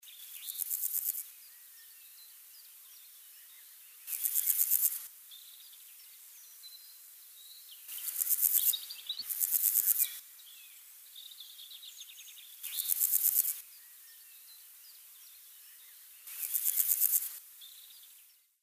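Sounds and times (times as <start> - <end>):
cricket chirping: 0.1 - 1.6, 3.3 - 5.7, 7.7 - 18.1.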